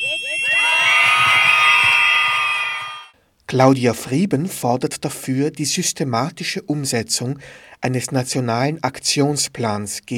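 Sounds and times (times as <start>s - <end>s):
crowd of protesters screaming together: 0.0s - 3.1s
speech: 3.5s - 10.1s.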